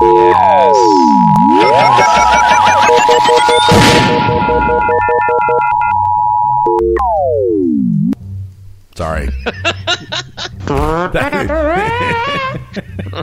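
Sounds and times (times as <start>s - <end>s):
electronic alarm sound effect: 0.0s - 7.4s
laughter: 9.2s - 13.2s.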